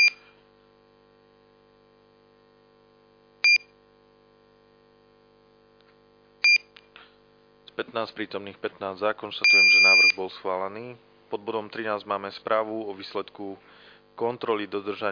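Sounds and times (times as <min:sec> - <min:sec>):
steady low electrical hum: 0:00.0 - 0:15.1
speech: 0:07.8 - 0:15.1
electronic voting system beeps during a city council vote: 0:09.4 - 0:10.2.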